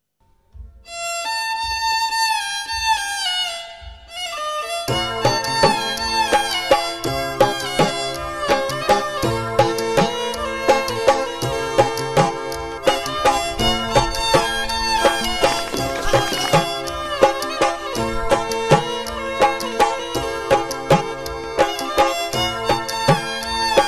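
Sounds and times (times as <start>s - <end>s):
tabla: 0.4s - 23.8s
violin: 0.8s - 23.8s.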